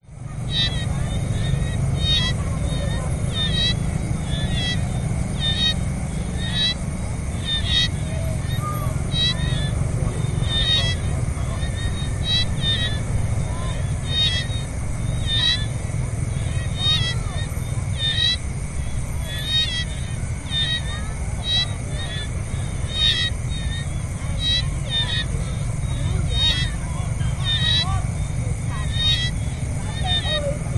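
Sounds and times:
cars in background: 0:00.0 - 0:30.7
frogs by a pond at night in Siem Reap Cambodia: 0:00.0 - 0:30.7
people in background: 0:00.0 - 0:30.7.

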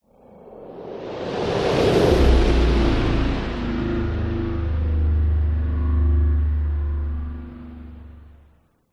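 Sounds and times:
horror whoosh: 0:00.4 - 0:08.4
robotic drone: 0:01.9 - 0:08.9.

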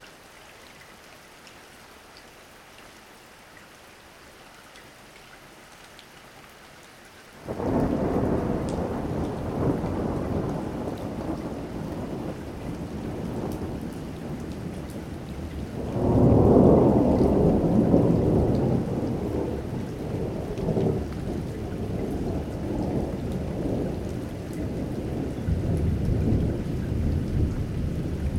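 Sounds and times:
light rain: 0:00.0 - 0:28.3
thunder: 0:07.5 - 0:28.3.

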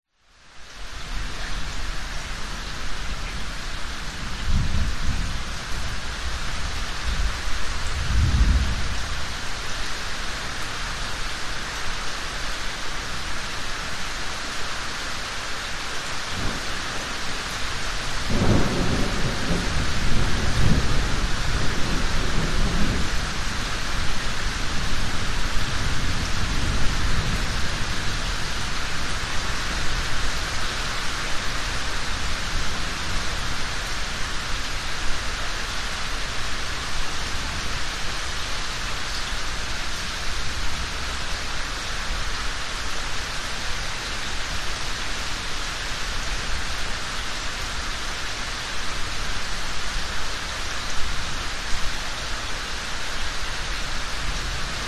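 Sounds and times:
rain in a yard: 0:00.1 - 0:54.8
thunder: 0:04.4 - 0:05.5, 0:07.9 - 0:09.2, 0:18.3 - 0:23.4.

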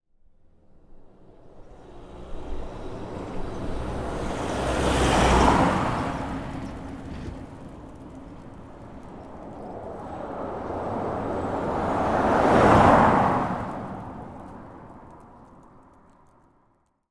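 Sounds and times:
small transport van on a country lane: 0:00.9 - 0:15.6.

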